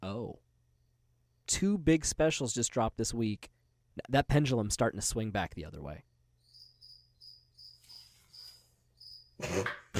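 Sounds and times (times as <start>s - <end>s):
speech: 1.5s - 6.1s, 9.4s - 9.8s
cricket chirping: 6.0s - 9.4s.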